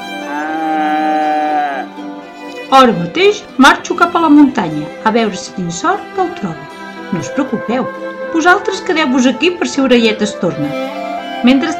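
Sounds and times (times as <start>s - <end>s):
cow mooing: 0.2s - 2.0s
speech: 2.7s - 11.7s.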